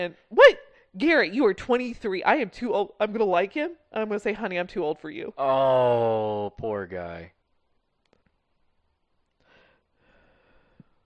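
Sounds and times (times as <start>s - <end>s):
speech: 0.0s - 7.4s
breathy exhalations into a microphone: 9.4s - 11.0s.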